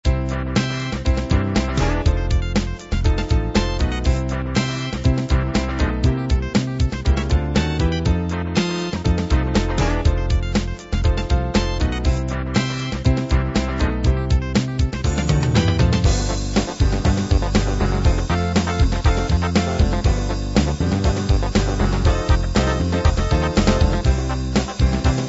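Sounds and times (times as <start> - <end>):
fatback drum beat: 1.0 - 25.2.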